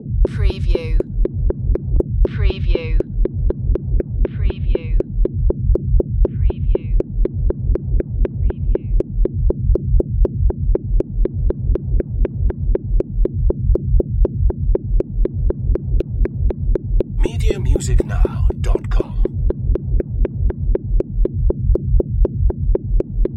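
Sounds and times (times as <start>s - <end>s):
tense bass beat: 0.0s - 23.3s.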